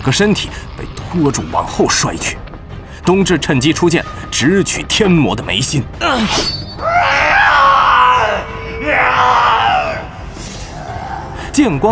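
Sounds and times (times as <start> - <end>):
speech: 0.0 - 2.4, 3.0 - 6.6, 11.6 - 11.9
man screaming in pain: 6.8 - 10.2.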